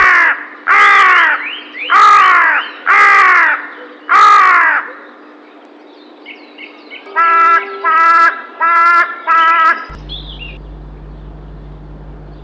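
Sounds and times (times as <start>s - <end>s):
crow cawing: 0.0s - 5.0s, 7.1s - 10.6s
faint steady hum: 9.9s - 12.4s.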